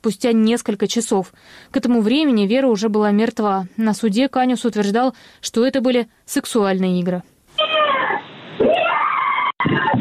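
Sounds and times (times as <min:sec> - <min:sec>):
speech: 0:00.0 - 0:07.3
woman screaming behind a door heard over a phone line: 0:07.6 - 0:09.9.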